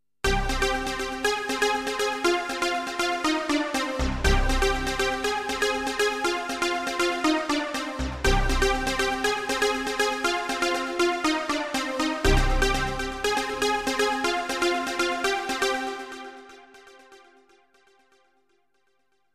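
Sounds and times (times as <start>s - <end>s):
trance music on JP8000 synthesizer: 0.2s - 18.2s.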